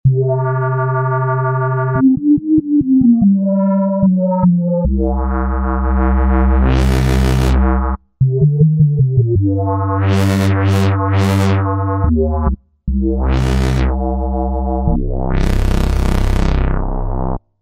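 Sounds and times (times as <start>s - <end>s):
synthesizer factory patches: 0.1s - 17.4s.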